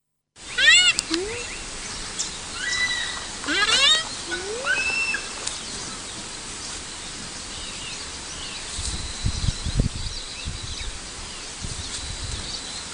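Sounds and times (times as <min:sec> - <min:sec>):
steady hiss: 0:00.4 - 0:12.9
rhinoceros calf high-pitched squeaking calls: 0:00.5 - 0:01.5, 0:02.6 - 0:05.4.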